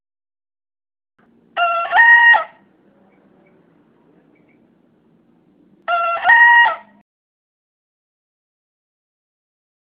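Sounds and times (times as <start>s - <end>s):
young green junglefowl hybrid bekisar crowing: 1.6s - 2.6s, 5.8s - 7.0s.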